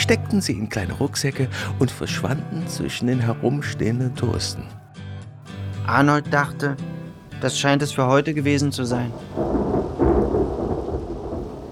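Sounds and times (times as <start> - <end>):
speech: 0.1 - 4.8, 5.9 - 9.7
faint rain: 8.8 - 11.7
deep rumbling thunder of an approaching thunderstorm: 9.1 - 11.7.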